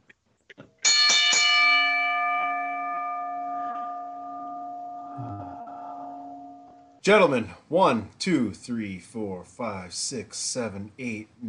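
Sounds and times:
bell rung to start a show: 0.9s - 7.0s
speech: 7.1s - 11.4s.

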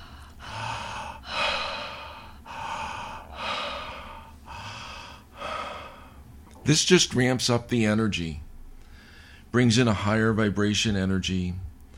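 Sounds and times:
connected circular breathing without pause: 0.0s - 6.3s, 8.8s - 9.5s
speech: 6.7s - 8.5s, 9.5s - 11.7s.

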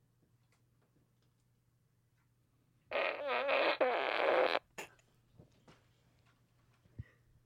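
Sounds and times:
loud drawn-out fart: 2.9s - 5.0s.

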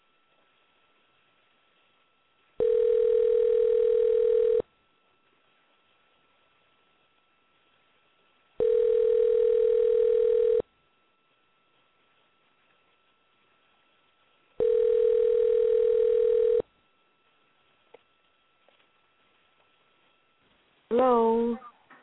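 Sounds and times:
telephone ringback tone: 2.6s - 4.6s, 8.6s - 10.6s, 14.6s - 16.6s.

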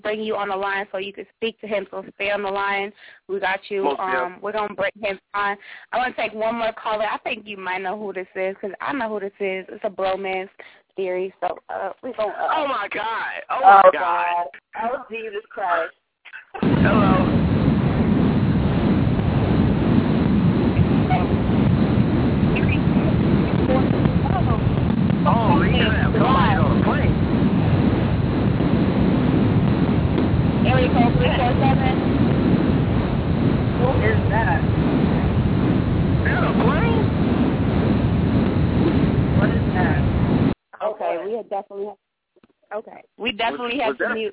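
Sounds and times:
speech: 0.0s - 17.4s, 40.9s - 42.0s, 42.7s - 44.3s
first-class airplane cabin noise through a tinny phone line: 1.7s - 5.2s, 12.1s - 14.6s, 15.4s - 40.6s
faint voices: 3.5s - 4.9s, 11.4s - 17.4s, 22.5s - 27.2s, 30.6s - 32.0s, 36.2s - 37.1s, 43.0s - 44.3s.

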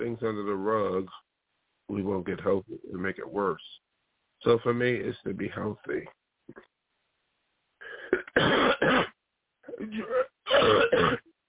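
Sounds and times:
speech: 0.0s - 1.3s, 1.9s - 3.8s, 4.4s - 6.7s, 8.4s - 8.9s, 9.8s - 11.3s
harsh coughing: 7.8s - 11.3s.

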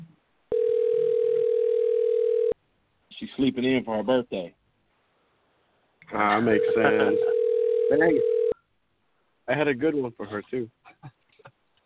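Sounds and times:
telephone ringback tone while waiting for a call to be answered: 0.5s - 2.6s, 6.5s - 8.6s
speech: 3.2s - 4.6s, 6.1s - 7.3s, 7.9s - 8.3s, 9.5s - 11.2s.

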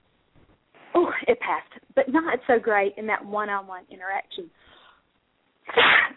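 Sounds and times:
speech: 1.3s - 4.8s
single sharp sneeze: 5.7s - 6.1s.

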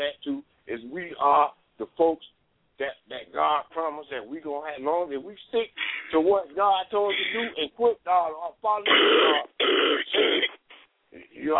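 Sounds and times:
speech: 0.0s - 10.5s
person coughing harshly: 7.1s - 7.6s, 8.9s - 10.6s.

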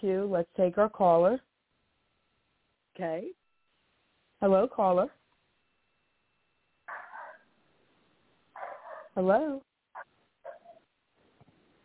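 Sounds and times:
speech: 0.0s - 1.5s, 3.0s - 3.4s, 4.4s - 5.2s, 9.2s - 9.7s
dog barking through a tinny narrow-band phone line: 6.8s - 7.6s, 8.5s - 9.2s, 10.0s - 10.9s.

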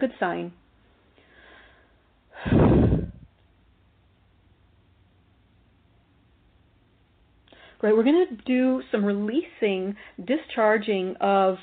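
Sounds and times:
speech: 0.0s - 0.6s, 2.4s - 2.9s, 7.8s - 11.6s
deep breathy exhalation: 1.2s - 3.3s.

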